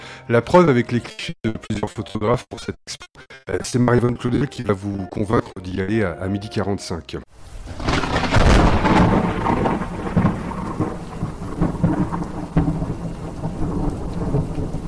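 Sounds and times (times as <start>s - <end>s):
speech: 0.3s - 7.5s
steady falling rain: 7.3s - 14.8s
thunder rumbling in low waves: 7.4s - 14.8s.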